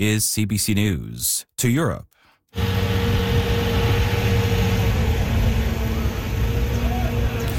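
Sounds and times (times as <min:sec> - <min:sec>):
speech: 0:00.0 - 0:03.0
heavy municipal water truck engine running while spraying streets in Prague: 0:02.6 - 0:07.5.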